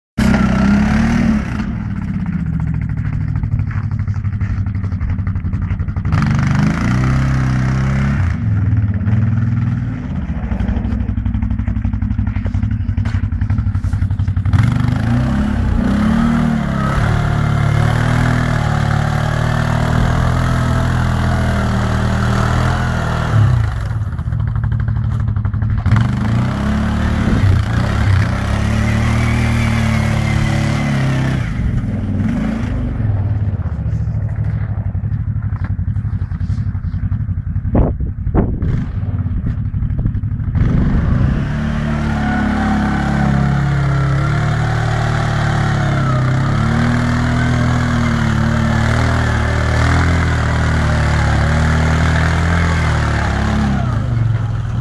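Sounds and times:
quad bike engine: 0.2 - 54.7.

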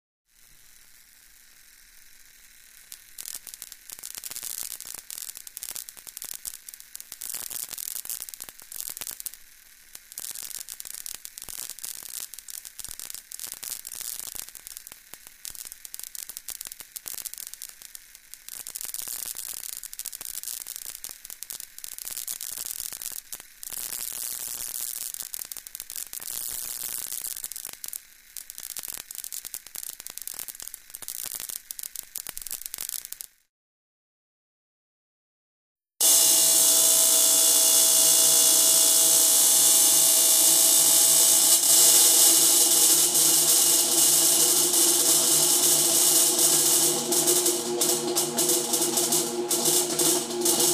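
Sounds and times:
tesla coil: 0.3 - 18.8, 36.0 - 50.7.

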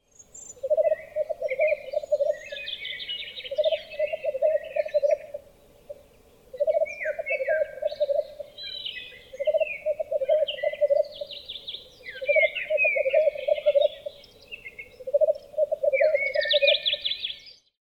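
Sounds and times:
black grouse calling: 0.6 - 11.4, 12.0 - 17.2.

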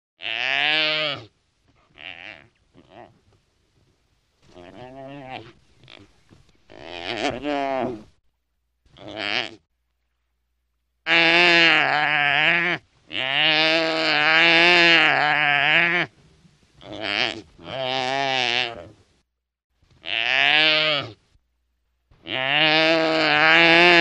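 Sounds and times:
antelope bleating: 0.2 - 3.2, 4.5 - 8.1, 8.9 - 9.7, 11.0 - 16.1, 16.8 - 19.0, 20.0 - 21.2, 22.2 - 23.9.

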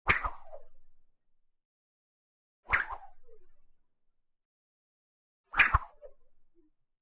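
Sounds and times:
whip swing: 0.1 - 0.5, 2.7 - 3.0, 5.5 - 6.0.

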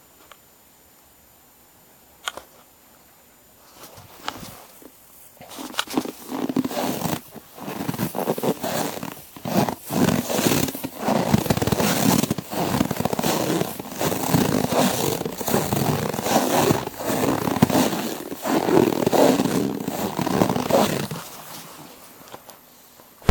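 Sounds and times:
snow crunching: 3.7 - 22.3.

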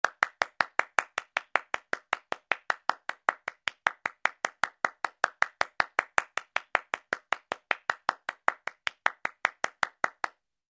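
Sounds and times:
hands clapping: 0.0 - 10.4.

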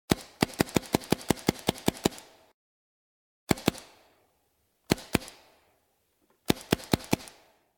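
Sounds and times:
paintball gun shots: 0.1 - 2.5, 3.5 - 4.2, 4.9 - 5.7, 6.4 - 7.7.

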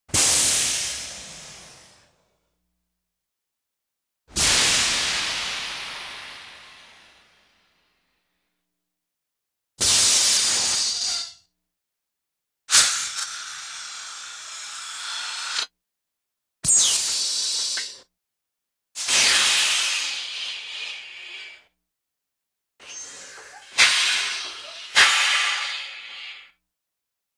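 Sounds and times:
steam: 0.1 - 2.2, 4.3 - 7.7, 9.8 - 11.4, 12.7 - 15.7, 19.0 - 21.7, 22.9 - 26.6.

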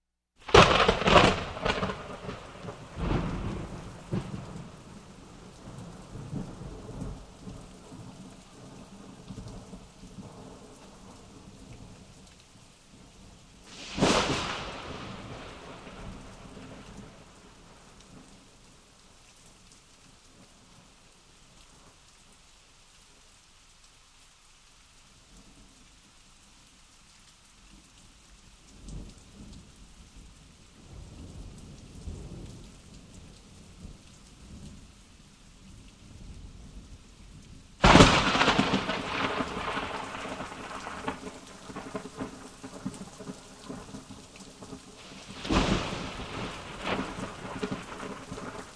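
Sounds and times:
storm: 0.4 - 8.2, 13.7 - 18.3, 37.8 - 48.7
thunderstorm: 0.5 - 4.8, 13.7 - 17.4, 37.8 - 43.9, 45.2 - 48.7.

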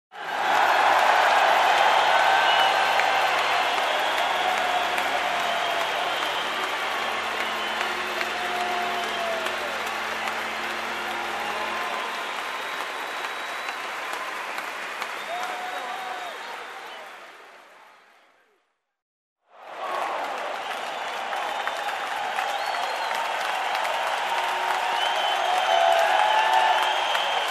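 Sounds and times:
crowd ovation in the stands: 0.1 - 18.5, 19.5 - 27.4.

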